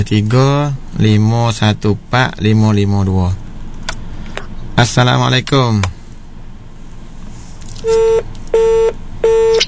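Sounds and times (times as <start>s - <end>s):
speech: 0.0s - 3.4s, 4.8s - 5.9s, 7.8s - 9.0s
telephone line beeps from a call cutting off: 7.8s - 9.6s.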